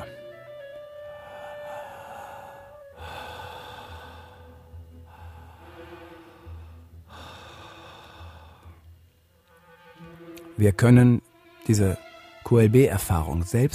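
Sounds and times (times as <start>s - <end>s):
deep full breathing in a guided breathing exercise: 1.0s - 8.9s
speech: 10.6s - 13.7s.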